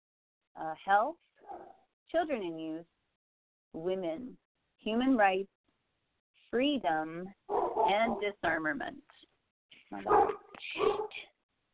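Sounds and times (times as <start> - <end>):
speech: 0.6 - 3.0, 3.7 - 5.6, 6.5 - 9.3, 9.9 - 11.3
female Great Dane puppy barking: 1.4 - 1.8, 7.5 - 8.3, 10.0 - 11.2.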